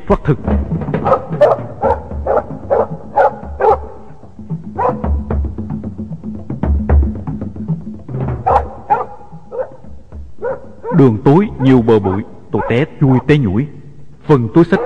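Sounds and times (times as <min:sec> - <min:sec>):
speech: 0:00.1 - 0:01.5, 0:11.0 - 0:14.8
dogs of a guerrilla band barking after catching a person's scent: 0:00.9 - 0:05.3, 0:08.4 - 0:13.0, 0:14.6 - 0:14.8.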